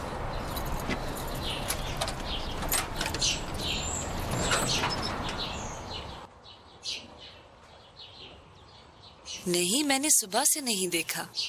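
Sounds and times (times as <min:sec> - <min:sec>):
keys jingling: 0:00.4 - 0:05.4
door being pushed open: 0:00.5 - 0:06.0
speech: 0:09.5 - 0:11.4.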